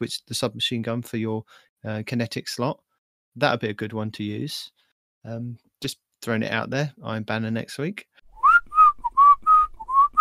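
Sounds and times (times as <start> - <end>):
speech: 0.0 - 8.1
person whistling a short bouncy tune into a microphone: 8.3 - 10.1.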